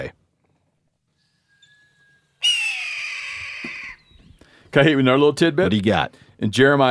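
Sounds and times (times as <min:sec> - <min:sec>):
red-tailed hawk raspy scream: 0:02.4 - 0:04.1
speech: 0:04.7 - 0:06.8.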